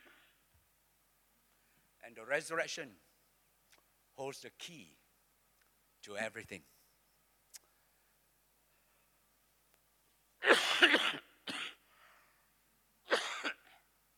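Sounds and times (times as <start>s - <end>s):
speech: 2.1s - 3.1s, 4.2s - 5.0s, 6.0s - 6.7s
person coughing in harsh bursts: 10.4s - 11.8s, 13.1s - 13.8s.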